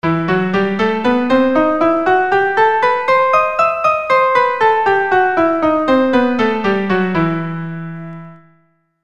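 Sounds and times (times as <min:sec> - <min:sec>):
keyboard playing E minor harmonic: 0:00.0 - 0:08.6.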